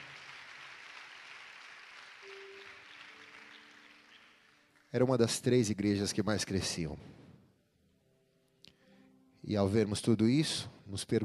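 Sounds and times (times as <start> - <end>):
crowd clapping: 0.0 - 5.3
speech: 4.9 - 7.2, 9.5 - 11.2.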